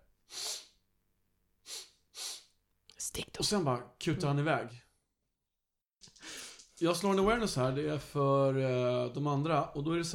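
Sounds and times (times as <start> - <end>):
voice imitating sniffing the air: 0.3 - 0.8, 1.6 - 2.6
speech: 3.1 - 4.9, 6.8 - 10.1.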